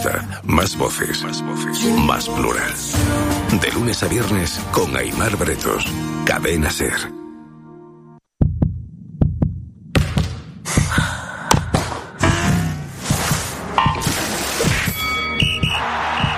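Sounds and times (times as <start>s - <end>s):
speech: 0.0s - 7.2s
heartbeat sound effect with deep double thumps: 8.4s - 14.1s, 15.4s - 16.3s.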